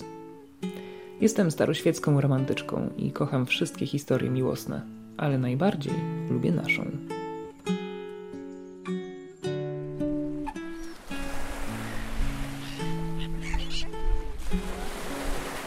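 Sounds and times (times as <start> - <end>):
soft melodic music: 0.0 - 15.6
speech: 1.2 - 7.8
seagulls calling over the waves: 10.3 - 15.6
sea surf: 10.6 - 15.6.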